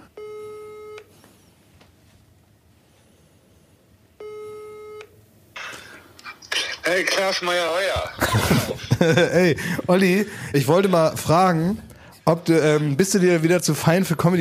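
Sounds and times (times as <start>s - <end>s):
telephone ringback tone while placing a call: 4.2s - 5.0s
speech: 6.9s - 14.3s
laughter: 7.9s - 10.8s.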